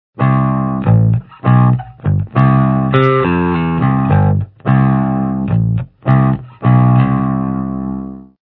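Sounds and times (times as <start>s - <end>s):
distorted bass: 0.2s - 8.4s.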